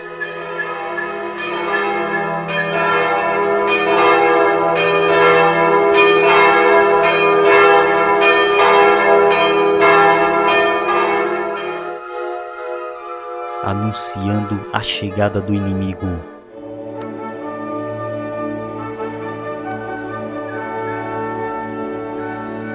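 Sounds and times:
old church bell ringing: 0:00.0 - 0:14.6, 0:19.6 - 0:22.7
speech: 0:14.0 - 0:16.3.

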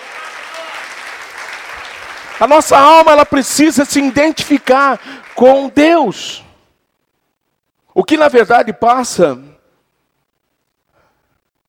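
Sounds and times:
church audience applauding during a sermon: 0:00.0 - 0:06.0
speech: 0:02.4 - 0:06.5, 0:08.0 - 0:09.5.

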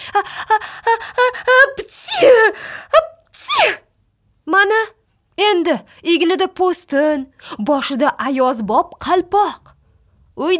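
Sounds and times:
speech: 0:00.1 - 0:01.2, 0:05.7 - 0:09.7, 0:10.4 - 0:10.5
sneezing: 0:01.8 - 0:02.6, 0:03.3 - 0:03.9.

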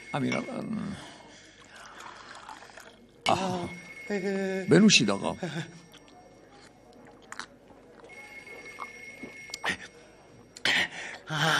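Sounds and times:
speech: 0:00.1 - 0:01.2, 0:03.3 - 0:05.8
water pouring into a glass: 0:01.4 - 0:03.2.

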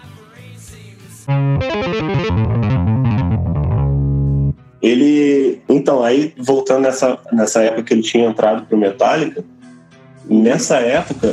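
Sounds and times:
speech: 0:01.3 - 0:03.1, 0:04.8 - 0:09.7, 0:10.3 - 0:11.3
heavily distorted electric bass playing a riff: 0:01.3 - 0:04.6.

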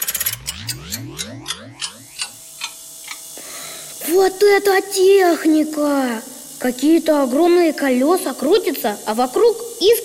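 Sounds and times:
warbling sweeping tones: 0:00.0 - 0:03.1
antique clock ticking: 0:00.0 - 0:03.2
speech: 0:04.2 - 0:10.0.

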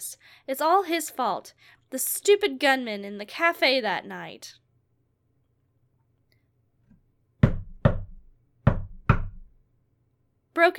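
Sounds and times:
speech: 0:00.0 - 0:04.6, 0:10.6 - 0:10.7
knocking on a bathroom door: 0:07.4 - 0:09.6.

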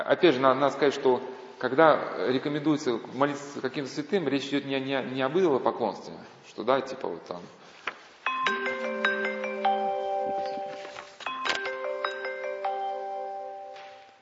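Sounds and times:
speech: 0:00.0 - 0:07.8
phone ringing with a bright melodic chime tune: 0:08.3 - 0:14.2.

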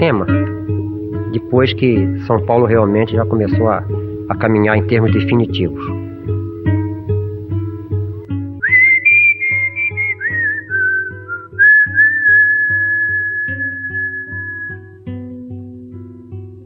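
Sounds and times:
speech: 0:00.0 - 0:00.5, 0:01.3 - 0:06.0
steady rhythmic musical accompaniment: 0:00.0 - 0:14.7
whistled melody: 0:08.6 - 0:15.0.

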